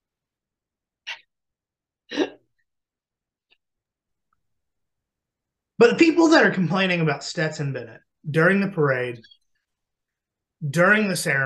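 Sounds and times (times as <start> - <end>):
person coughing after whiskey went down the wrong pipe: 2.1 - 2.5
speech: 5.8 - 9.4, 10.6 - 11.4.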